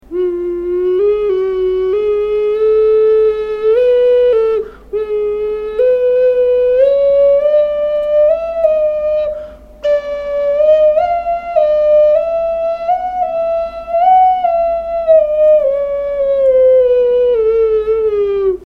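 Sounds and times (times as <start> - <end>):
ocarina: 0.0 - 18.6.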